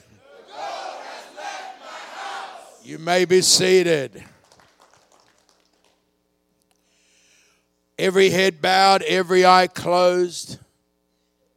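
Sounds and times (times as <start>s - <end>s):
large audience shouting in a chant-like pattern: 0.2s - 2.8s
speech: 2.8s - 4.4s, 8.0s - 10.6s.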